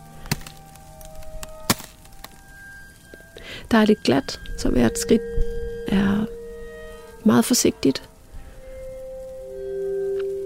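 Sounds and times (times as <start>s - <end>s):
sharp snaps of ice underfoot: 0.2s - 2.4s
speech: 3.6s - 6.4s, 7.2s - 8.1s.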